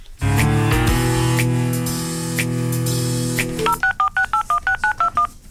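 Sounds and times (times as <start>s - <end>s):
loud music: 0.2s - 3.8s
short electronic telephone dialing beeps: 3.6s - 5.3s.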